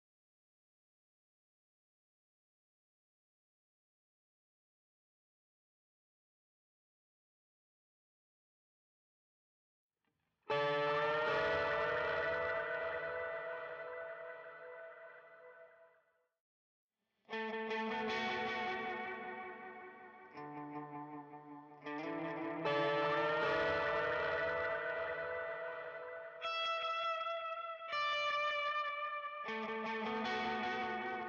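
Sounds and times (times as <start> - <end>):
guitar stems: 10.5 - 15.4, 17.3 - 31.2.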